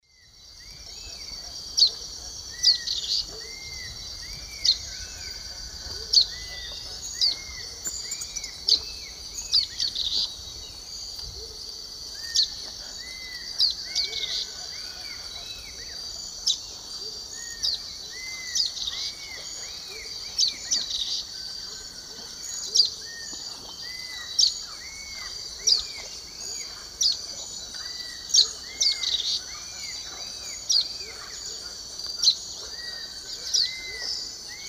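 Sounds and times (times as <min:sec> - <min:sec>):
Myiozetetes similis dawn song in the Eastern Lowlands of South America: 0:00.0 - 0:34.6.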